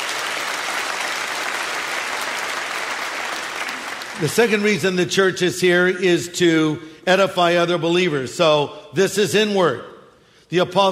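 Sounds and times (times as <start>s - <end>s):
large crowd clapping: 0.0s - 4.7s
speech: 4.2s - 9.9s, 10.5s - 10.9s.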